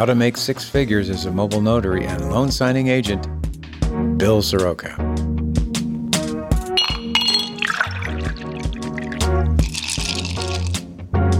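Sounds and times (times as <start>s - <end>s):
speech: 0.0s - 3.5s, 4.2s - 5.3s
steady low musical backing: 0.0s - 11.3s
glasses clinking in a toast: 6.8s - 10.7s
liquid pouring and splashing: 6.8s - 10.8s.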